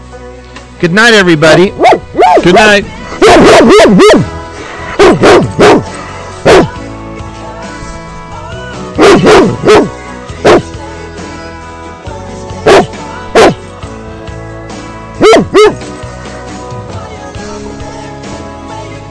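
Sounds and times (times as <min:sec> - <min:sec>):
speech: 0:00.8 - 0:04.4, 0:05.0 - 0:06.0
dog barking: 0:01.8 - 0:02.5, 0:03.2 - 0:04.3, 0:04.9 - 0:06.8, 0:09.0 - 0:10.6, 0:12.7 - 0:13.6, 0:15.2 - 0:15.8.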